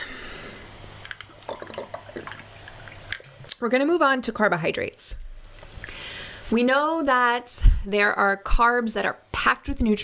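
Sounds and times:
person sipping water: 0:00.0 - 0:03.6
speech: 0:03.6 - 0:05.2, 0:06.5 - 0:10.0.

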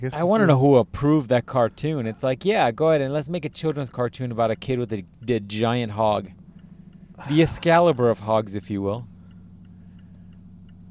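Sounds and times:
speech: 0:00.0 - 0:06.4, 0:07.2 - 0:09.1
truck engine revving at high revs at a stoplight: 0:01.0 - 0:10.8
faint regular clicks: 0:06.3 - 0:07.1, 0:09.2 - 0:10.8.

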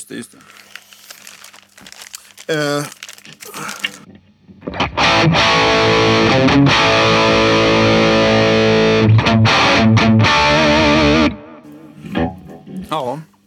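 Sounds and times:
speech: 0:00.1 - 0:00.6, 0:02.5 - 0:03.0
distorted electric guitar riff through an effects pedal: 0:04.6 - 0:12.6.

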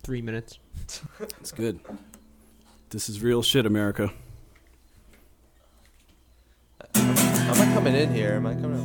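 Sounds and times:
speech: 0:00.0 - 0:02.2, 0:02.9 - 0:04.3, 0:07.5 - 0:08.8
faint crickets chirping at night outdoors: 0:02.1 - 0:07.5.

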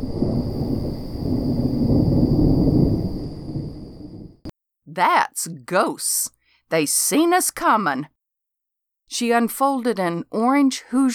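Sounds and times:
rolling thunder from a storm: 0:00.0 - 0:04.5
speech: 0:05.0 - 0:08.2, 0:09.1 - 0:11.1.

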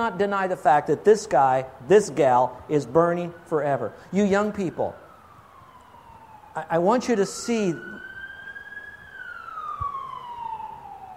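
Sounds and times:
speech: 0:00.0 - 0:05.0, 0:06.6 - 0:08.0
emergency vehicle siren passing outside: 0:00.0 - 0:11.1.

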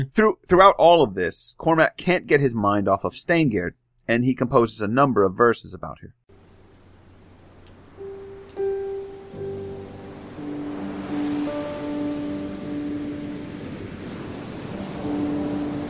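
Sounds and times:
speech: 0:00.0 - 0:06.2
steady sustained low humming tones: 0:06.3 - 0:15.8
ocean surf crashing against cliffs: 0:06.4 - 0:15.8.

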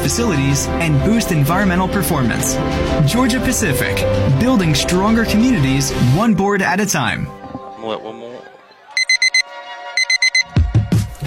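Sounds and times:
speech: 0:00.0 - 0:08.3
alarm clock beeping with shrill electronic tones: 0:09.0 - 0:10.5.

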